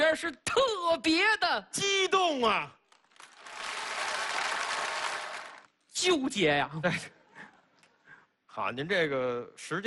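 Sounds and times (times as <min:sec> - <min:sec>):
speech: 0:00.1 - 0:02.8, 0:06.0 - 0:07.2, 0:08.6 - 0:09.8
audience applause at a comedy stage performance: 0:03.1 - 0:05.7.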